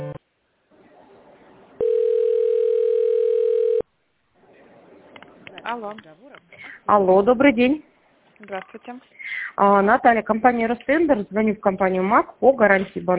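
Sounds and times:
steady continuous telephone ringback tone: 1.8 - 3.8
telephone line hiss: 1.8 - 3.8
speech: 5.7 - 13.1.

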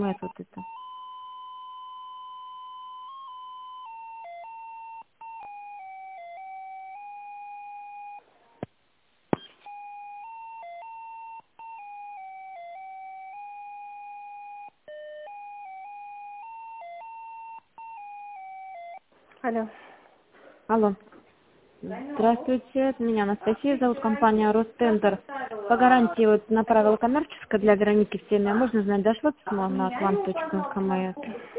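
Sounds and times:
speech: 0.0 - 0.9, 19.4 - 19.9, 20.7 - 21.1, 21.8 - 31.5
two-tone signal over a business phone line during call transfer: 0.0 - 8.2, 9.6 - 19.0.

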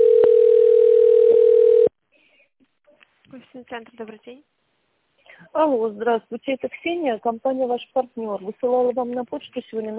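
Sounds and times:
telephone ringback tone while a call connects to an operator: 0.0 - 1.9
speech: 3.6 - 4.6, 5.5 - 9.9.

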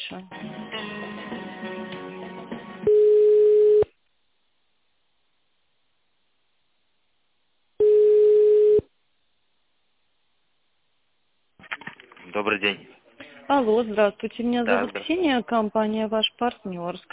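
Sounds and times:
speech: 0.1 - 1.0, 12.4 - 17.1
telephone line beeps during call transfer to a manager: 2.9 - 3.9, 7.8 - 8.8.

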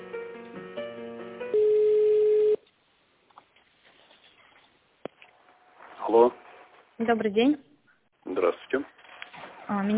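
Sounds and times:
telephone line beeps as a call is connected: 1.5 - 2.6
speech: 6.2 - 6.4, 7.0 - 7.7, 8.3 - 9.0, 9.7 - 9.9.

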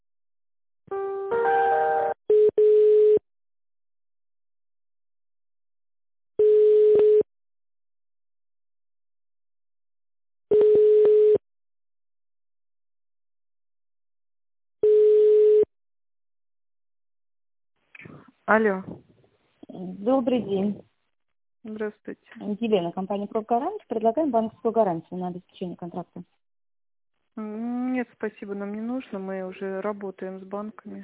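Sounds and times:
steady telephone line beeps during call transfer: 1.4 - 3.2, 6.4 - 7.2, 10.5 - 11.4, 14.8 - 15.7
speech: 18.5 - 19.1, 19.7 - 20.9, 21.6 - 26.4, 27.4 - 31.0.

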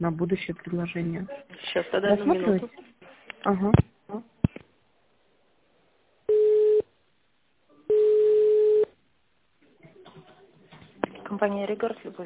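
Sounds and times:
speech: 0.0 - 4.3, 11.3 - 12.2
telephone ringing tone while a number is dialed: 6.3 - 6.9, 7.9 - 8.9.

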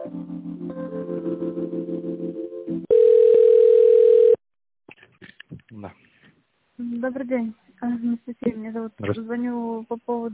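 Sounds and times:
loud steady telephone beep during call transfer: 2.9 - 4.4
speech: 7.1 - 10.3.

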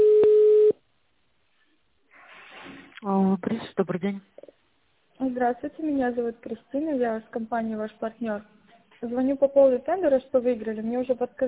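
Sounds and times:
telephone ringback tone as a call connects: 0.0 - 0.7
speech: 3.3 - 4.4, 5.2 - 11.4.

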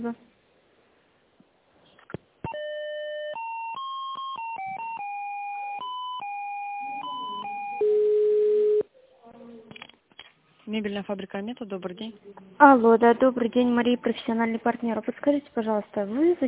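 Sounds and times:
speech: 0.0 - 0.3, 10.7 - 16.4
electronic telephone line beeping while a business call is transferred: 2.5 - 8.8.

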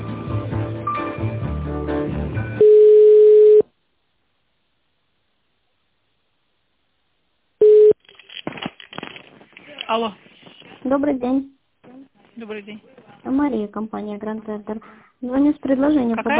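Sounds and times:
telephone line tone while a call is transferred: 2.6 - 3.6, 7.6 - 8.0
speech: 9.9 - 11.6, 12.4 - 16.3.

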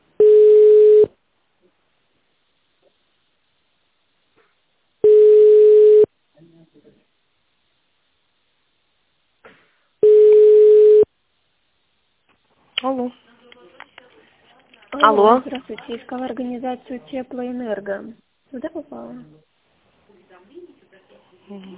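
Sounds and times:
telephone ringback tone while waiting for an answer: 0.2 - 1.1, 5.0 - 6.1, 10.0 - 11.1
speech: 15.1 - 19.5, 21.5 - 21.7.

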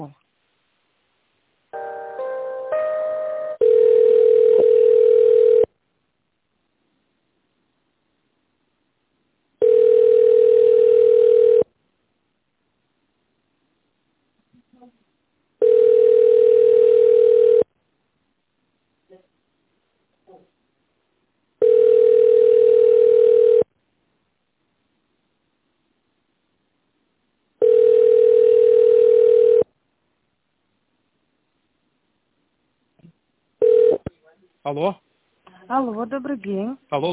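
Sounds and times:
speech: 0.0 - 0.2, 34.7 - 35.0, 35.8 - 37.1
short telephone line tones while a call is transferred: 3.6 - 5.7, 9.6 - 11.6, 15.6 - 17.6, 21.6 - 23.6, 27.6 - 29.6, 33.6 - 34.1.

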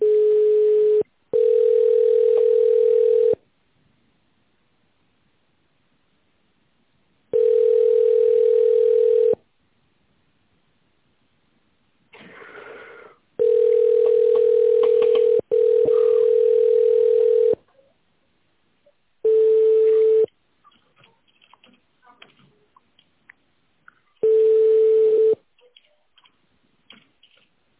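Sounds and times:
telephone ringback tone while waiting for a call to connect: 0.0 - 3.4, 7.3 - 9.4, 13.4 - 17.6, 19.2 - 20.3, 24.2 - 25.4.

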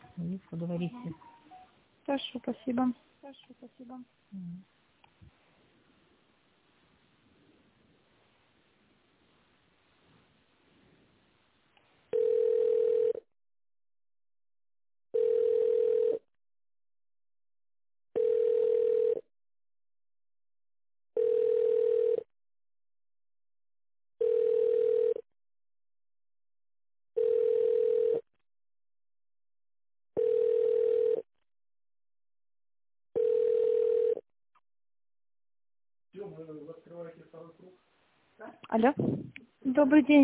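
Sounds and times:
speech: 0.2 - 1.3, 2.1 - 4.8, 37.4 - 40.2
telephone ringback tone while a call is transferred to an office: 12.1 - 13.2, 15.1 - 16.2, 18.2 - 19.2, 21.2 - 22.3, 24.2 - 25.2, 27.2 - 28.2, 30.2 - 31.3, 33.2 - 34.2.

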